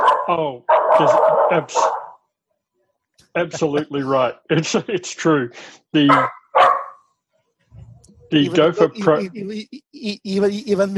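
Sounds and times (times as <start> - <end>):
dog barking: 0.0 - 2.2, 6.0 - 7.0
laughter: 0.3 - 1.8, 3.4 - 6.3, 7.9 - 10.9
speech: 0.3 - 2.0, 3.4 - 6.7, 8.3 - 10.9.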